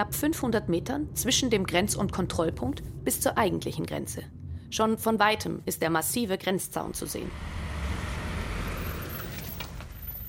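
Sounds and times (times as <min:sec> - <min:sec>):
speech: 0:00.0 - 0:07.7
car engine humming as the car drives and parks: 0:06.9 - 0:10.2.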